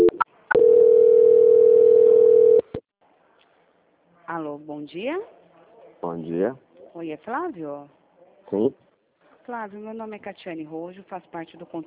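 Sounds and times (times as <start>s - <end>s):
telephone call transfer tone: 0.0s - 2.7s
speech: 4.3s - 5.4s, 6.0s - 8.8s, 9.5s - 11.8s.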